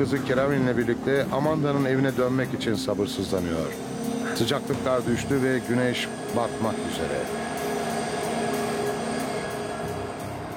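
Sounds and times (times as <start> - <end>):
speech: 0.0 - 7.5
train rumble with droning hum: 3.2 - 10.5.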